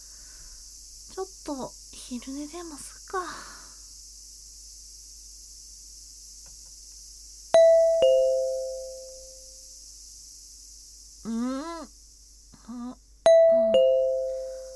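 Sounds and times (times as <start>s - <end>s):
speech: 1.2s - 3.5s
two-tone ding-dong doorbell chime: 7.6s - 9.4s, 13.3s - 14.7s.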